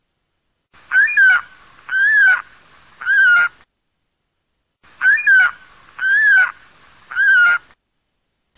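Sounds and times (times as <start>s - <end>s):
saker falcon screeching: 0.9s - 2.4s, 3.0s - 3.5s, 5.0s - 7.7s.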